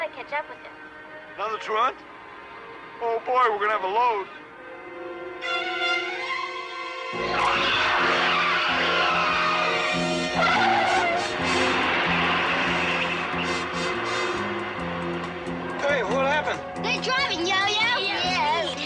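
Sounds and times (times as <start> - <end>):
speech: 0.2 - 2.2, 3.0 - 5.8, 7.1 - 7.7
speeding bus engine roar: 7.2 - 18.8
tires of a speeding bus skidding and squealing: 7.3 - 18.6.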